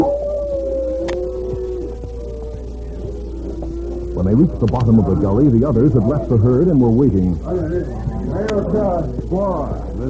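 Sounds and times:
man imitating a coyote's wailing howl: 0.0 - 5.4
speech: 4.2 - 10.0.

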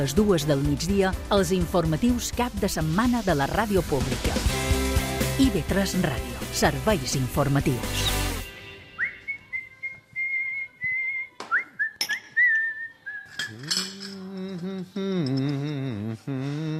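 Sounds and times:
speech: 0.0 - 4.6, 5.4 - 8.2
person whistling a tune: 8.9 - 13.7
dishes clinking: 12.0 - 12.5, 13.3 - 14.4
person humming or singing: 13.3 - 16.7.

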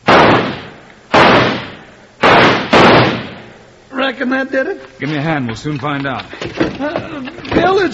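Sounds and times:
gunshots blasting at a stuck door lock: 0.0 - 3.4
speech: 4.1 - 7.9.

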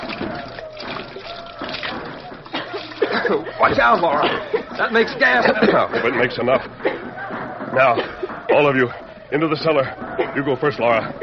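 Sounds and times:
acid from batteries poured onto zinc plates: 0.0 - 5.6
laughter: 0.0 - 11.2
speech: 3.3 - 7.1, 7.7 - 11.2.

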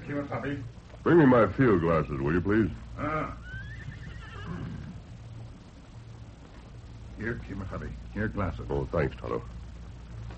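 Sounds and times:
low rumbling noise: 0.0 - 10.3
speech: 0.1 - 3.4, 7.2 - 9.6
horse whinnying at a stream along a ridge: 3.0 - 5.0.

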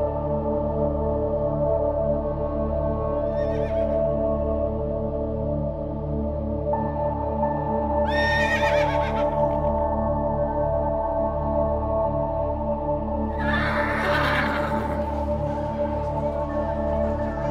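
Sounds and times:
steady droning tonal background: 0.0 - 17.4
Menorcan horses neighing on Menorca during a Menorcan horse week: 13.4 - 17.4.

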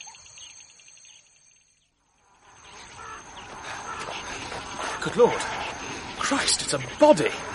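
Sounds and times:
flock of birds calling: 0.0 - 7.5
insect-like buzz: 0.0 - 7.5
speech: 5.0 - 5.6, 6.2 - 7.5.

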